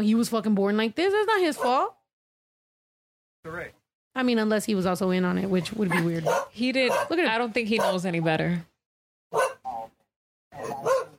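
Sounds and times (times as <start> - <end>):
speech: 0.0 - 2.0, 3.4 - 8.7, 9.3 - 10.0, 10.6 - 11.1
dog barking: 1.6 - 1.9, 5.9 - 7.2, 7.8 - 8.0, 9.3 - 9.9, 10.6 - 11.1.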